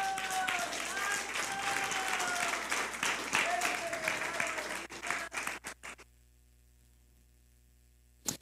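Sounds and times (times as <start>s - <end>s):
voices mixed into applause: 0.0s - 5.6s
congregation applauding: 0.0s - 6.0s.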